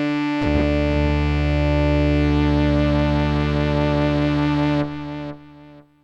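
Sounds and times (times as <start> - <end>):
classical sawtooth synth lead: 0.2 - 5.7.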